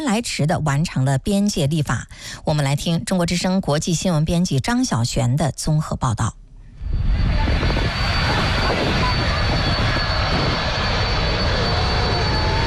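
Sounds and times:
speech: 0:00.0 - 0:06.4
airplane flying with broadband engine roar: 0:06.6 - 0:12.6.

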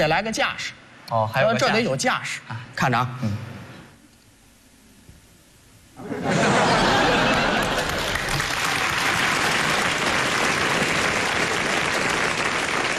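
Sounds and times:
speech: 0:00.0 - 0:03.5
people laughing: 0:06.0 - 0:08.4
large crowd applauding: 0:06.6 - 0:12.9.

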